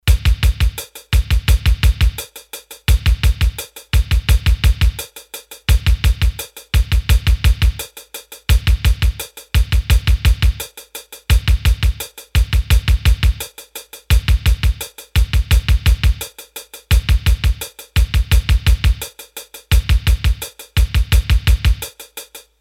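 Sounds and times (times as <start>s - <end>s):
electronic pop rhythm demo on a Roland D-10 synthesizer: 0.0s - 2.2s, 2.9s - 5.0s, 5.7s - 7.8s, 8.5s - 10.6s, 11.3s - 13.4s, 14.1s - 16.3s, 16.9s - 19.1s, 19.7s - 21.9s.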